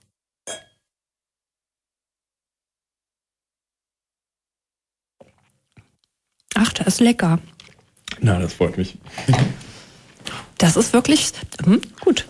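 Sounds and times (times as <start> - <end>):
wine glasses clinking in a toast: 0.5 - 0.8
speech: 6.6 - 7.6, 8.2 - 9.6, 10.6 - 12.2.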